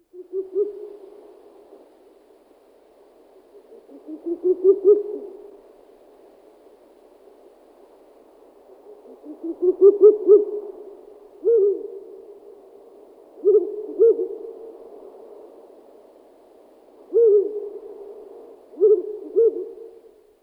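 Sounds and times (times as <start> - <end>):
Strix uralensis owl: 0.1 - 1.2, 3.4 - 5.6, 8.7 - 12.4, 13.4 - 14.8, 17.1 - 20.2.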